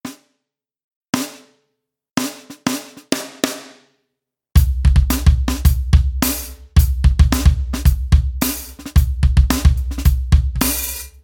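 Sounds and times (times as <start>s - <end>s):
piccolo snare drum: 4.6s - 11.2s.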